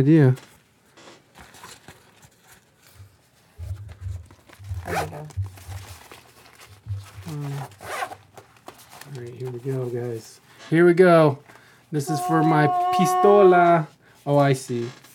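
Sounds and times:
speech: 0.0s - 0.5s, 7.3s - 8.0s, 9.1s - 15.0s
low thumps: 3.0s - 8.4s
self-healing zipper on a foam-padded pistol case pulled open: 3.6s - 5.8s, 7.2s - 8.2s.

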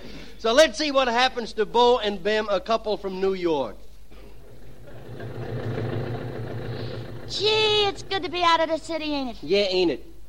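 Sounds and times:
speech: 0.4s - 3.8s, 7.3s - 10.1s
car engine idling: 4.3s - 9.0s.

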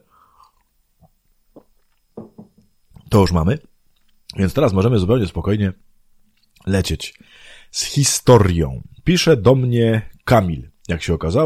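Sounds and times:
person sipping water: 0.2s - 2.0s
speech: 3.1s - 3.7s, 4.4s - 5.9s, 6.6s - 11.4s.

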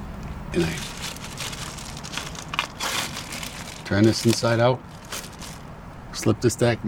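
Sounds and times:
speech: 0.5s - 0.9s, 3.9s - 5.2s, 6.2s - 6.8s
plastic bag crinkling and rustling while being handled: 0.6s - 5.7s.

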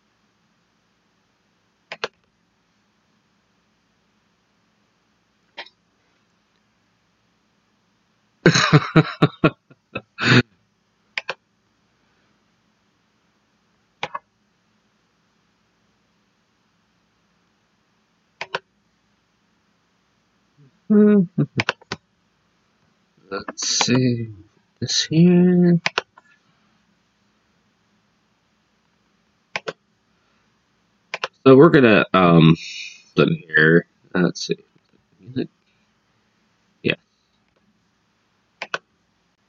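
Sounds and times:
mouse or keyboard clicks while pulling up a soundbite file: 1.9s - 2.2s, 11.2s - 11.4s, 14.0s - 14.2s, 18.4s - 18.6s, 21.6s - 22.0s, 25.8s - 26.2s, 29.6s - 29.8s, 31.1s - 31.4s, 38.6s - 38.8s
laughter: 8.5s - 10.4s
speech: 8.7s - 9.6s, 23.9s - 25.9s, 31.5s - 34.7s, 35.3s - 35.6s, 36.8s - 37.0s.

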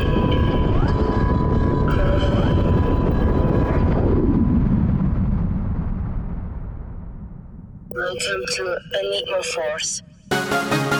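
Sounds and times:
video game escape shuttle crash-landing roar: 0.0s - 7.9s
speech: 8.2s - 10.9s.

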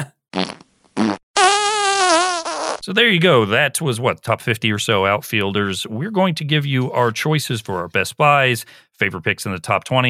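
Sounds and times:
fart sound effects: 0.4s - 2.8s
speech: 2.9s - 10.0s.

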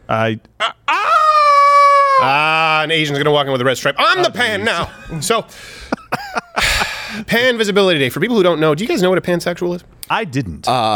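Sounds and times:
speech: 0.1s - 1.0s, 2.2s - 5.9s, 7.1s - 10.9s
person imitating rooster crow: 0.6s - 2.5s.

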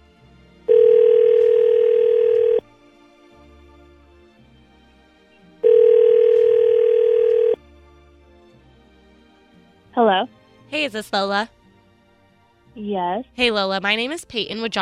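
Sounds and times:
telephone ringback tone: 0.7s - 2.6s, 5.6s - 7.6s
speech: 10.2s - 11.6s, 12.8s - 14.8s.

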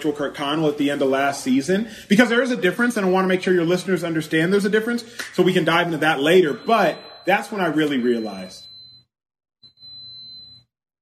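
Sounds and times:
speech: 0.0s - 8.7s
high-pitched electronic beep from an old rice heater warming rice: 6.2s - 10.7s.

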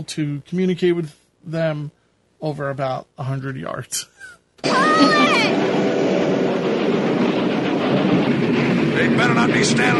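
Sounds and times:
speech: 0.0s - 5.8s, 9.0s - 9.9s
train rumbling and clattering: 4.6s - 9.9s.

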